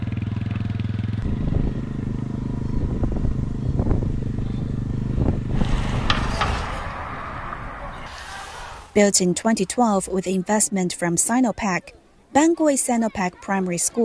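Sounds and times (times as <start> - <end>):
motorcycle engine idling and revving: 0.0 - 8.0
clanks: 5.3 - 7.8
brief hiss: 8.1 - 9.0
speech: 9.0 - 14.0.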